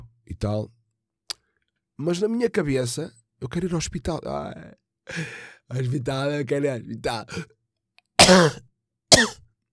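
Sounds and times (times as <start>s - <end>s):
speech: 0.4s - 0.8s, 2.0s - 7.6s, 8.2s - 9.4s
man coughing while sick with a cold: 8.2s - 9.5s.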